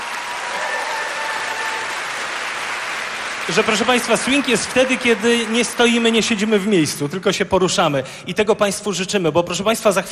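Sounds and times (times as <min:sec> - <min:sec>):
audience applauding a performer welcomed onto a stage: 0:00.0 - 0:06.8
speech: 0:03.5 - 0:10.0.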